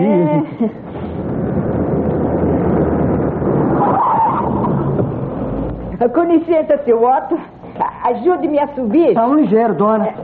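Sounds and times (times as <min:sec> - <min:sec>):
speech: 0:00.0 - 0:01.2, 0:06.0 - 0:10.2
heavy bus engine rumbling: 0:00.0 - 0:08.6
high squeal of bus brakes: 0:00.9 - 0:06.1.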